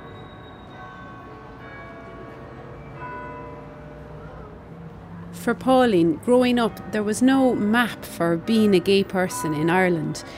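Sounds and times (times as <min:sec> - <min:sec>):
cathedral church bells ringing: 0:00.0 - 0:10.3
outdoor city noise: 0:00.0 - 0:10.3
speech: 0:05.4 - 0:10.3.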